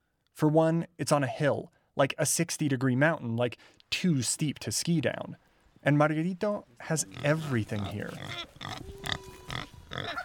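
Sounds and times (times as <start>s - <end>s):
speech: 0.4s - 9.0s
eager pig on a leash grunting on a steep hillside farm: 7.0s - 10.2s.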